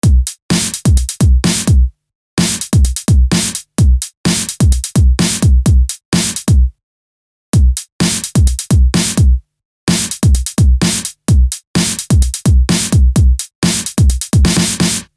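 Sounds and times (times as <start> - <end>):
breakbeat drum loop: 0.0 - 6.7, 7.6 - 15.1.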